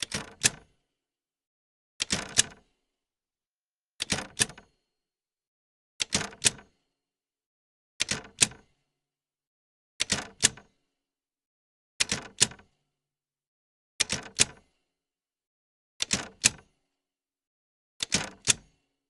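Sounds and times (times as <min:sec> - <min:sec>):
Olivetti typewriter backspace key press: 0:00.0 - 0:00.6, 0:02.0 - 0:02.6, 0:04.0 - 0:04.6, 0:06.0 - 0:06.6, 0:08.0 - 0:08.6, 0:10.0 - 0:10.7, 0:12.0 - 0:12.6, 0:14.0 - 0:14.6, 0:16.0 - 0:16.6, 0:18.0 - 0:18.6.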